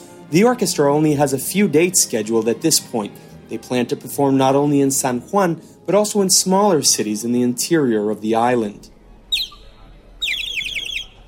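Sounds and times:
speech: 0:00.3 - 0:09.0
small whistle imitating a bird call played by a piccolo player: 0:09.3 - 0:11.2.

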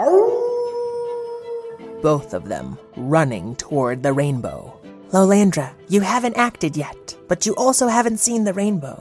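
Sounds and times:
grey shaggy wolf howling: 0:00.0 - 0:02.1
speech: 0:02.0 - 0:09.0.

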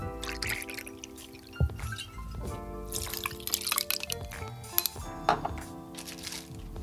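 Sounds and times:
whisky pouring into a short glass filled with ice: 0:00.2 - 0:02.2, 0:02.9 - 0:05.1, 0:06.0 - 0:06.6
ice clinking in a short glass: 0:00.2 - 0:06.6.

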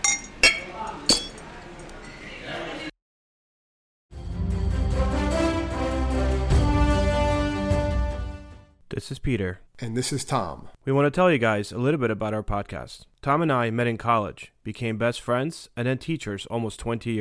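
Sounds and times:
glasses clinking in a toast: 0:00.0 - 0:02.2
steady music: 0:04.2 - 0:08.7
speech: 0:09.0 - 0:17.1.

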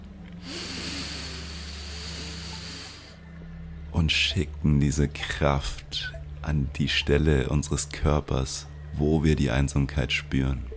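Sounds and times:
deep slow breath in and out: 0:00.4 - 0:03.4
speech: 0:04.0 - 0:10.7.

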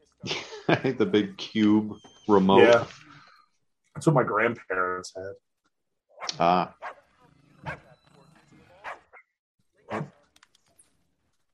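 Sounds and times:
laughter: 0:00.2 - 0:02.0
speech: 0:00.2 - 0:03.0, 0:04.0 - 0:05.5, 0:06.3 - 0:06.9
dog barking to announce a trick-or-treater at the door: 0:06.2 - 0:07.0, 0:08.8 - 0:09.2, 0:09.9 - 0:10.2
dog yipping: 0:06.2 - 0:07.0, 0:09.9 - 0:10.1.

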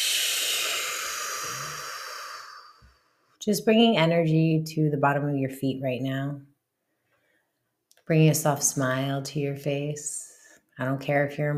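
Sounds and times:
long slow exhale during a grounding breathing exercise: 0:00.0 - 0:03.4
speech: 0:03.4 - 0:06.5, 0:08.1 - 0:11.5.

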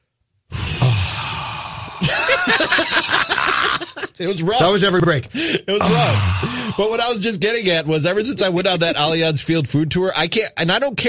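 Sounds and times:
voice imitating a big yawn: 0:00.5 - 0:02.1, 0:05.8 - 0:06.9
laughter: 0:02.0 - 0:04.2
speech: 0:04.2 - 0:11.0.

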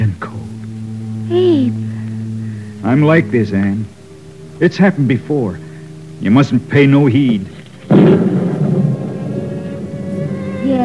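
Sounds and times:
speech: 0:01.3 - 0:01.8, 0:02.8 - 0:04.0, 0:04.6 - 0:05.6, 0:06.2 - 0:08.3
thunder rumbling from an approaching storm: 0:07.1 - 0:10.8.

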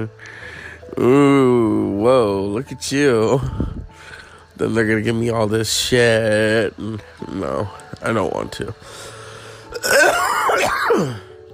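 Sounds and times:
speech: 0:00.0 - 0:03.8, 0:04.6 - 0:09.1, 0:10.9 - 0:11.3
sick person in bed coughing and clearing throat: 0:09.7 - 0:11.3.

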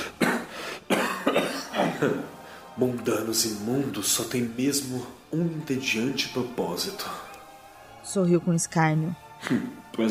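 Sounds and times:
weak breathy hoarse coughing after a laugh: 0:00.0 - 0:02.3, 0:09.4 - 0:09.8
speech: 0:02.0 - 0:07.3, 0:08.0 - 0:10.1.

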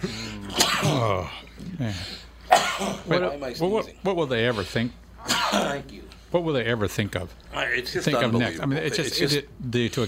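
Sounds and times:
person sneezing: 0:00.0 - 0:01.4, 0:05.2 - 0:05.8
speech: 0:00.8 - 0:10.0.

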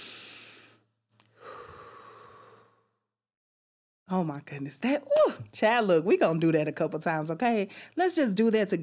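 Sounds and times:
deep breath drawn in and then released: 0:00.0 - 0:03.1
speech: 0:04.1 - 0:08.8.

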